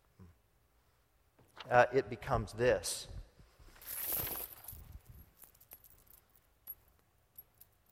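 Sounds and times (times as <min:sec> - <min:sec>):
speech: 0:01.6 - 0:03.2
metal chain rattling as it is handled: 0:03.8 - 0:07.9.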